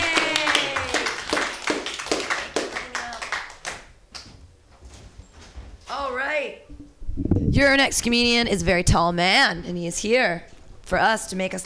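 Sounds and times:
small crowd applauding: 0.0s - 3.7s
speech: 7.2s - 11.6s.

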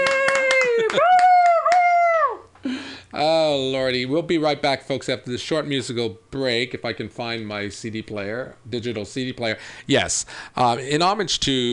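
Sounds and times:
sharp hand claps: 0.0s - 2.0s
person letting out a long drawn-out cheer: 0.0s - 2.5s
speech: 3.2s - 11.7s.

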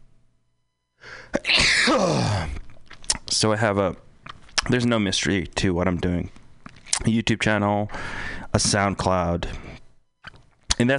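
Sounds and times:
person sneezing: 1.2s - 2.6s
speech: 3.4s - 6.4s, 7.0s - 9.6s, 10.8s - 10.9s.

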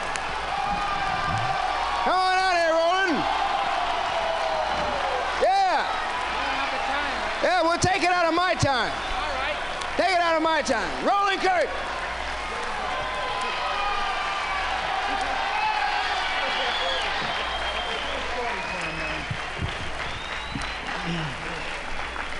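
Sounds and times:
big audience applause at a concert: 0.0s - 22.3s
whoops and cheers: 0.4s - 7.0s, 12.5s - 22.3s
speech: 10.0s - 11.9s.

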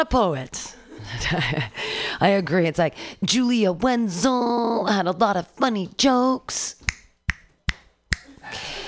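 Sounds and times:
speech: 0.0s - 6.9s
audience at a comedy show snapping fingers: 6.9s - 8.4s.

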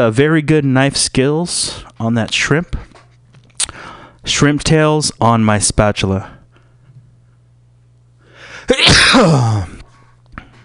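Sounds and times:
speech: 0.0s - 2.9s, 4.2s - 6.4s, 8.7s - 9.7s
person sneezing: 8.5s - 9.9s.

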